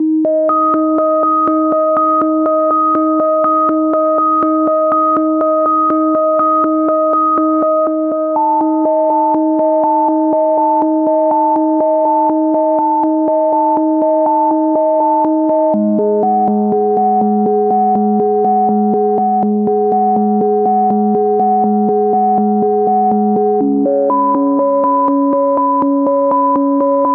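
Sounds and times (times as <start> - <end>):
melodic arpeggios in D major and B minor at 122 BPM: 0.0 - 27.1.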